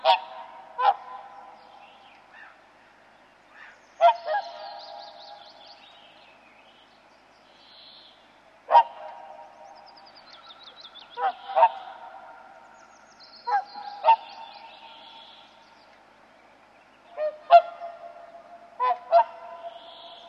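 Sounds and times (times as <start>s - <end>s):
Whooper swan Cygnus cygnus trumpeting honks: 0.0s - 1.5s, 3.6s - 5.2s, 8.7s - 9.4s, 11.1s - 12.5s, 13.5s - 15.2s, 17.2s - 20.2s.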